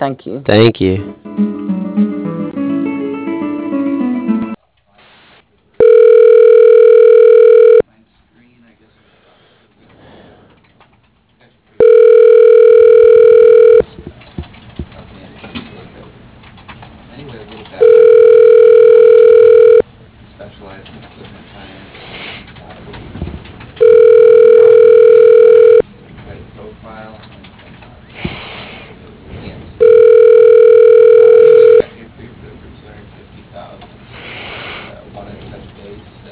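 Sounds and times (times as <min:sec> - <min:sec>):
speech: 0:00.0 - 0:02.1
telephone ringback tone during call transfer to voicemail: 0:05.8 - 0:07.8, 0:11.8 - 0:13.8, 0:17.8 - 0:19.8, 0:23.8 - 0:25.8, 0:29.8 - 0:31.8.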